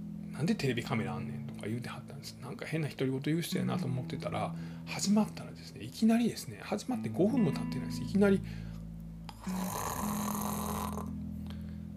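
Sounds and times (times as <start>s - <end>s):
speech: 0.4s - 8.7s, 9.4s - 10.1s
person mimicking the loud snore of a man asleep in a chair: 9.3s - 11.2s.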